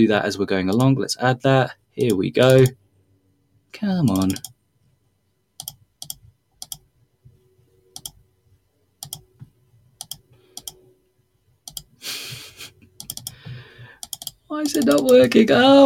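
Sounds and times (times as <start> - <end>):
speech: 0.0 - 2.8, 3.7 - 4.5, 14.5 - 15.8
computer mouse clicking: 2.0 - 2.8, 4.1 - 4.6, 5.6 - 6.9, 7.9 - 8.2, 9.0 - 10.8, 11.6 - 12.0, 13.0 - 15.3.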